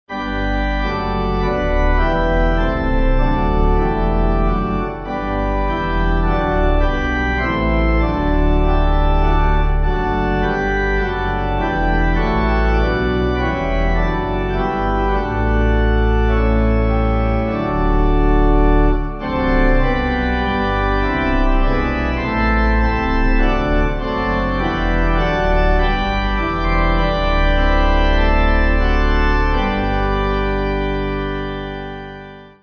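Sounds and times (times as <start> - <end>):
pipe organ playing: 0.1 - 32.6.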